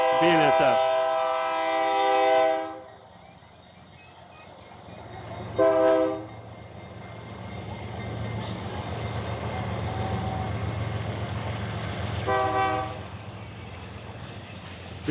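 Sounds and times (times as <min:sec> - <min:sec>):
freight train horn blasts: 0:00.0 - 0:03.0, 0:05.5 - 0:06.3, 0:09.5 - 0:10.7, 0:12.2 - 0:13.1
freight train of tank cars rumbling past: 0:00.0 - 0:15.0
speech: 0:00.2 - 0:00.9.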